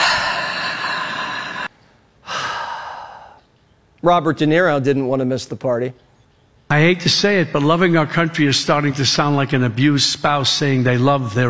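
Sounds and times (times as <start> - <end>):
deep breaths during a guided breathing exercise: 0.0 - 3.4
speech: 4.0 - 6.0, 6.7 - 11.4.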